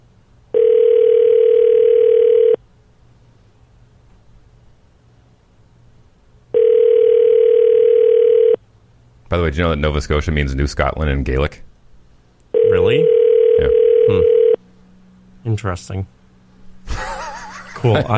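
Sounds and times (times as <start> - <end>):
telephone ringback tone while calling a number in Nova Scotia: 0.5 - 2.6, 6.5 - 8.6, 12.6 - 14.6
speech: 9.5 - 11.6, 15.6 - 16.2, 17.8 - 18.1
laughter: 16.9 - 18.1.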